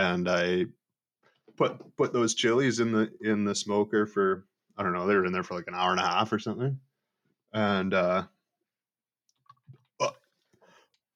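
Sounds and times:
speech: 0.0s - 0.8s, 1.6s - 6.9s, 7.5s - 8.3s
mouth clicks and smacks: 9.3s - 10.5s
person burping: 10.0s - 10.4s.

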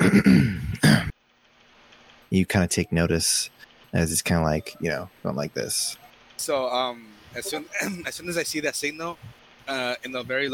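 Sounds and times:
person clearing throat: 0.0s - 1.1s, 7.5s - 8.0s
speech: 0.1s - 1.1s, 2.3s - 10.5s.

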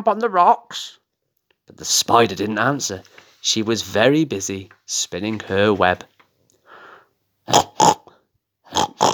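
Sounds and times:
speech: 0.0s - 1.0s, 1.7s - 6.1s, 7.5s - 8.0s
voice imitating a pig grunting: 7.4s - 9.1s.

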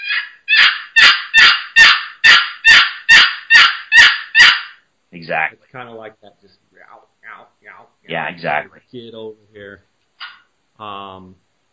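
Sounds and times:
raspy hen turkey yelps played on a box call: 0.0s - 4.8s, 10.2s - 10.5s
speech: 5.3s - 9.9s, 10.8s - 11.4s.

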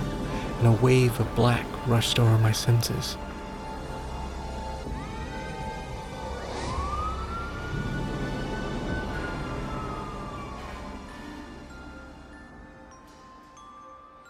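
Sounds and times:
speech: 0.6s - 3.2s
ambulance siren wailing: 4.9s - 11.6s.

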